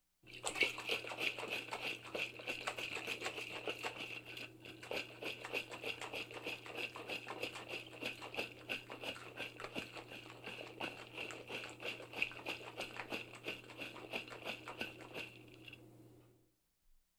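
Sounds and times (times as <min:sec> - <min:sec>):
liquid shaken in a bottle in a kitchen: 0:00.3 - 0:15.8.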